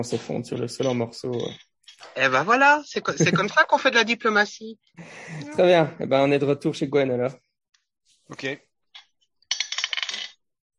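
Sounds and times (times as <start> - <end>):
speech: 0.0 - 7.4, 8.3 - 8.7
dice rattling across a hard tabletop: 9.0 - 10.4.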